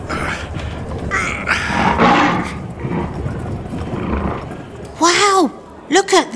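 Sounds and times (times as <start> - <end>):
lion roaring loudly: 0.0 - 5.8
noisy background: 0.0 - 6.3.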